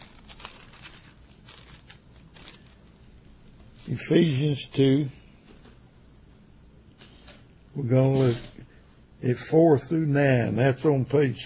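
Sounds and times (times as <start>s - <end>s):
thin Bible pages turning: 0.0s - 2.9s
speech: 3.9s - 5.2s, 7.8s - 8.6s, 9.2s - 11.4s.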